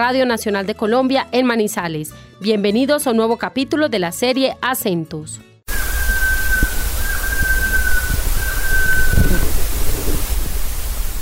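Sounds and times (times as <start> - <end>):
speech: 0.0 - 5.5
quetzal calling with long whistled notes: 5.7 - 9.9
constant hiss of rain-like noise: 5.7 - 11.2.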